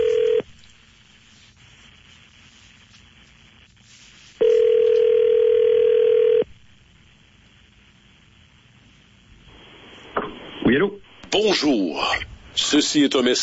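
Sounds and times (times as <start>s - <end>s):
telephone ringing tone while placing a call: 0.0s - 0.4s, 4.4s - 6.5s
speech: 10.8s - 13.4s.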